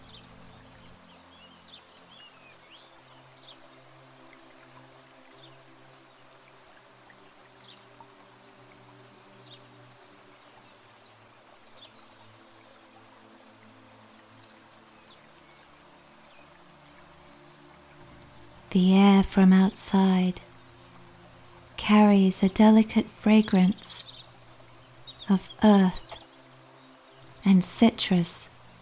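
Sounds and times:
soft steady rain outside: 0.0 - 28.8
sparrows, swifts and doves chirping in a courtyard: 18.1 - 26.4, 27.1 - 28.8
speech: 18.7 - 20.5, 21.9 - 24.1, 25.3 - 26.1, 27.4 - 28.5.

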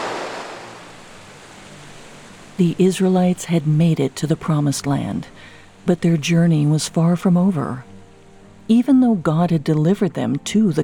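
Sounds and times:
river water rushing: 0.0 - 3.4
speech: 2.6 - 7.9, 8.7 - 10.8.

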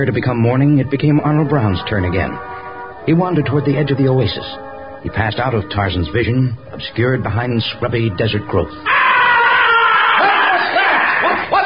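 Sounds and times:
speech: 0.0 - 2.5, 3.1 - 9.0
man screaming: 8.8 - 11.6.

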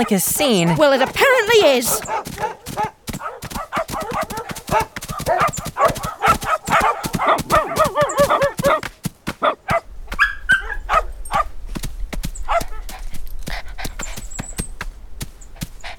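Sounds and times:
speech: 0.0 - 2.9
Chihuahuas and elderly pugs barking and yipping: 0.0 - 11.5, 12.4 - 13.0.

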